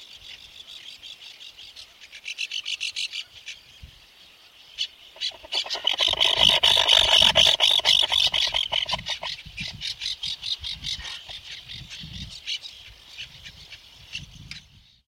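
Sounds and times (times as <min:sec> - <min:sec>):
Least auklet Aethia pusilla chattering trill: 0:05.2 - 0:09.3.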